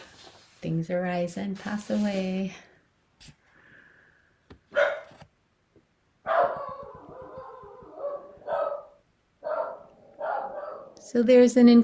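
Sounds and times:
speech: 0.6s - 3.4s, 11.1s - 11.8s
dog barking and yelping in another room: 4.7s - 5.2s, 6.2s - 11.0s.

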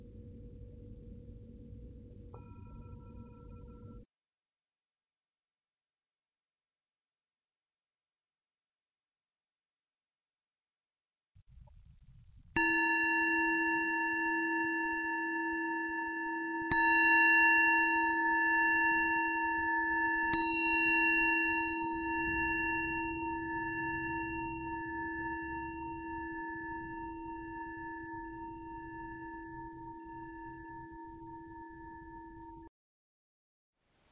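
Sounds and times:
meditation bell ringing: 0.0s - 4.1s, 12.6s - 32.7s.

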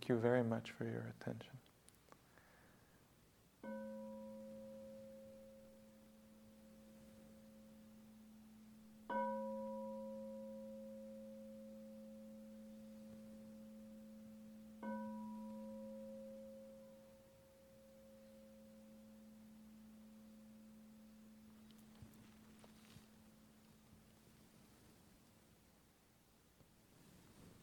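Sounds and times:
speech: 0.1s - 1.7s
meditation bell struck: 3.6s - 21.7s.

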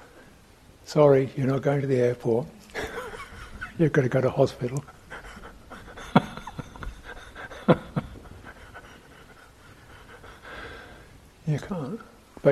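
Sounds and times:
speech: 0.9s - 2.6s, 3.8s - 5.0s, 11.6s - 12.5s
laughter: 2.7s - 9.5s
quick rhythmic panting breaths: 5.0s - 11.3s.

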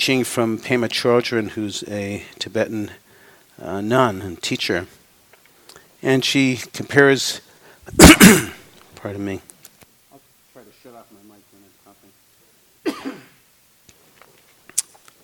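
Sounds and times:
speech: 0.0s - 3.0s, 3.6s - 5.0s, 6.0s - 9.5s
person coughing at the tail end of a cold: 7.9s - 8.6s, 12.8s - 13.4s
throaty voiced sounds: 7.9s - 8.6s.

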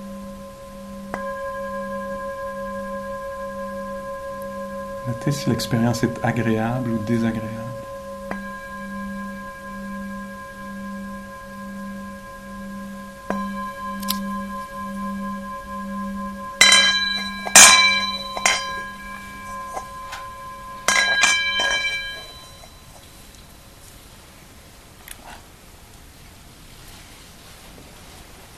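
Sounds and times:
meditation bell ringing: 0.0s - 23.7s
speech: 5.0s - 7.8s
sharp clinks and knocks: 16.6s - 23.1s.

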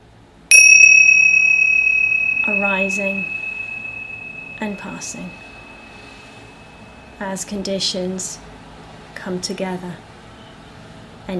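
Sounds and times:
single bell strike ringing: 0.5s - 6.4s
speech: 2.5s - 3.4s, 4.6s - 5.4s, 7.2s - 8.5s, 9.2s - 10.1s.

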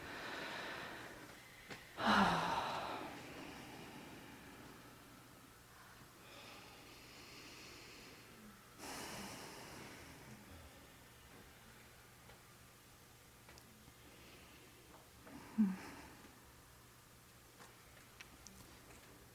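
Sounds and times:
group of meditation retreat participants taking deep breaths together: 0.0s - 5.2s, 6.2s - 10.7s, 14.0s - 16.4s.

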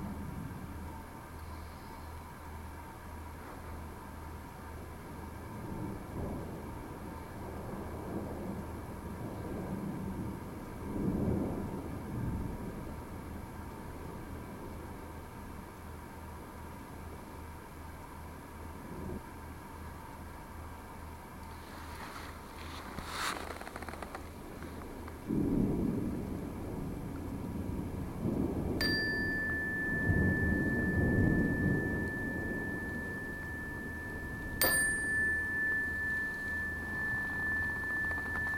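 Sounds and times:
constant windy background: 0.0s - 38.5s
rolling thunder in a thunderstorm: 5.5s - 15.1s, 25.2s - 34.6s
sharp thunder crack: 5.6s - 12.9s, 25.2s - 34.6s.

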